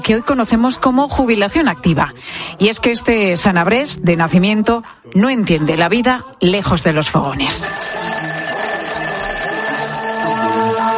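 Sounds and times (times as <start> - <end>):
speech: 0.0 - 8.0
alarm clock ringing with electronic chime tone: 7.6 - 10.9.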